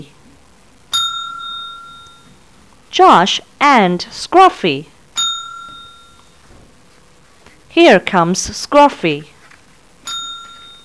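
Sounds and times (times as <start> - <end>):
bright bell chime signaling a page turn: 0.9 - 2.3, 5.2 - 6.4, 10.1 - 10.8
speech: 3.0 - 4.9, 7.8 - 9.3.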